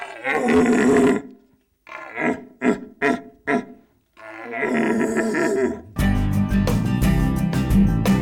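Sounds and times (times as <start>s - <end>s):
man's voice imitating a red deer stag's rutting roar: 0.0s - 6.0s
music: 6.0s - 8.1s.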